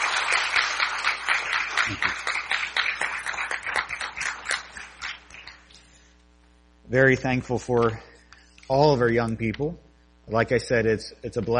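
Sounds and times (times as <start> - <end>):
room full of people applauding: 0.0 - 5.7
speech: 0.3 - 0.8, 6.9 - 8.1, 8.7 - 11.5.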